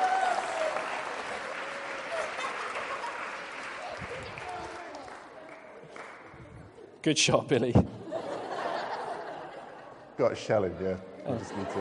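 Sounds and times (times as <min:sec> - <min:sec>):
audience applause: 0:00.0 - 0:06.3
laughter: 0:02.0 - 0:04.0, 0:07.6 - 0:11.7
speech: 0:07.0 - 0:08.0, 0:10.2 - 0:11.7.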